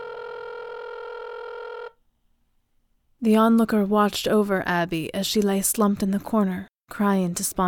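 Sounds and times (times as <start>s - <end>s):
telephone ringing with a single steady electronic tone: 0.0s - 2.0s
speech: 3.2s - 7.6s.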